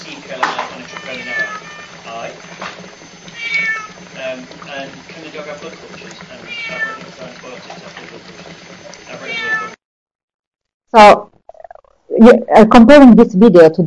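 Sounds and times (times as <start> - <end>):
distressed cat meowing in strained, drawn-out cries: 0.8 - 1.9, 3.4 - 4.0, 6.4 - 7.1, 9.1 - 9.8
speech: 4.4 - 9.0, 10.9 - 11.3, 12.2 - 13.8.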